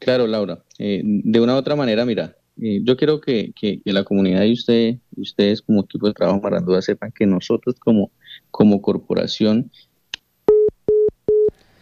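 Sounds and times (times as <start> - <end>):
speech: 0.0 - 9.9
faint hiss: 0.0 - 10.3
phone busy tone beeps after a dropped phone call: 10.5 - 11.5.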